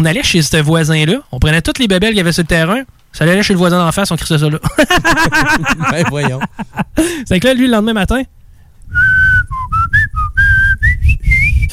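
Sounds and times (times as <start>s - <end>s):
speech: 0.0s - 8.4s
laughter: 4.6s - 7.0s
person whistling a morning coffee commercial jingle: 9.0s - 11.7s.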